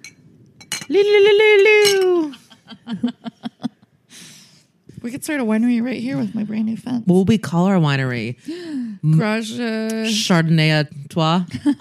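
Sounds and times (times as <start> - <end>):
glasses clinking in a toast: 0.0 - 1.0, 1.7 - 2.2
speech: 0.9 - 1.7, 2.9 - 3.4, 5.0 - 11.7
laughter: 2.3 - 3.9, 11.5 - 11.7.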